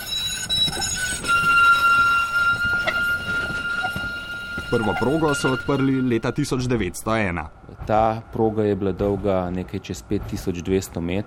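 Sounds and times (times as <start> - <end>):
thin sustained metallic squeal from tram wheels: 0.0 - 7.7
tram rolling on rails in Ljubljana: 0.0 - 11.2
speech: 4.7 - 11.2.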